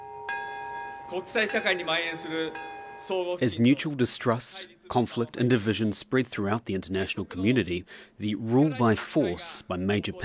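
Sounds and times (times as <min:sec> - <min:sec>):
peace bell struck at atomic bombing memorial ceremony: 0:00.0 - 0:03.4
speech: 0:01.1 - 0:10.2.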